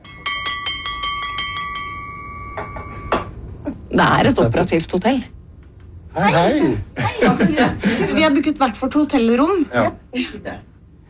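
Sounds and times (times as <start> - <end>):
reception desk bell being rung in a small hotel lobby: 0.0 - 3.5
speech: 3.9 - 5.4, 6.2 - 10.7
laughter: 6.4 - 8.5.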